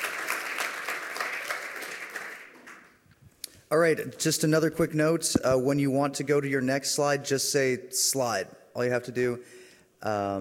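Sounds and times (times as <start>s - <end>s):
audience applauding a presenter after a lightning talk: 0.0s - 3.0s
speech: 3.7s - 10.3s.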